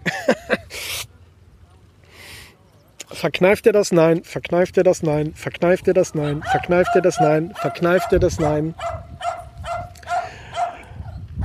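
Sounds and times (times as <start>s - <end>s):
laughter: 0.0s - 1.1s
speech: 3.2s - 9.4s
dog barking in the background: 6.2s - 11.4s.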